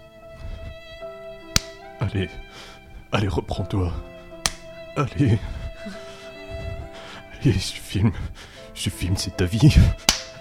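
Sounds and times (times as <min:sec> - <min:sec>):
person slapping their own face: 0:01.5 - 0:01.8, 0:04.4 - 0:04.8, 0:10.0 - 0:10.3
speech: 0:02.1 - 0:04.2, 0:05.0 - 0:06.0, 0:07.4 - 0:10.1.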